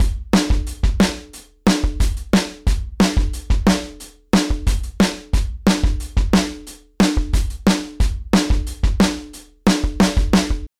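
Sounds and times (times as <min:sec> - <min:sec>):
drums: 0:00.0 - 0:10.7.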